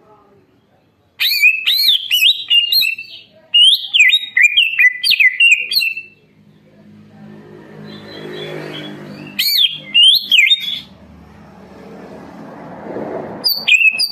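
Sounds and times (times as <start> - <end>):
leafbird singing rich fast whistled phrases: 1.2 - 6.2, 7.9 - 10.9, 13.4 - 14.1.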